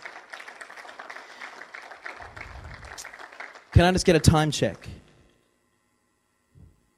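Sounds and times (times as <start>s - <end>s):
audience clapping: 0.0s - 4.8s
speech: 3.8s - 5.0s.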